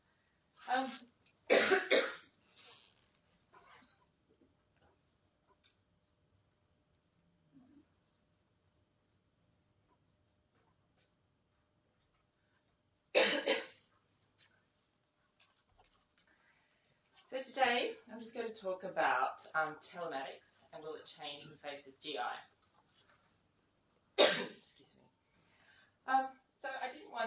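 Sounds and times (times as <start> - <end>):
speech: 0.7 - 1.2, 17.3 - 22.5, 26.1 - 26.4
speaker giving a presentation coughing: 1.5 - 2.3, 13.2 - 13.8, 24.2 - 24.6.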